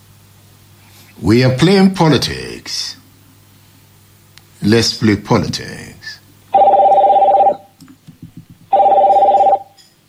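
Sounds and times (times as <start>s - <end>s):
speech: 1.2s - 3.0s, 4.6s - 6.2s
telephone ringing with trilling electronic tone: 6.6s - 7.7s, 8.7s - 9.8s.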